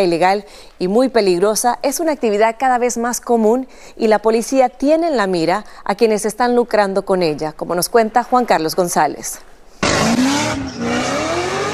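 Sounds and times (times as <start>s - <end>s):
speech: 0.0s - 10.2s
car engines roaring speeding in southern California: 9.8s - 11.7s
car tires squealing burning rubber doing stunts: 9.8s - 11.7s.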